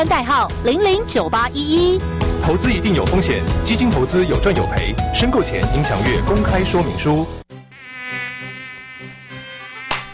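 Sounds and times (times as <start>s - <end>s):
speech: 0.0s - 7.4s
mosquito buzzing: 7.6s - 10.1s.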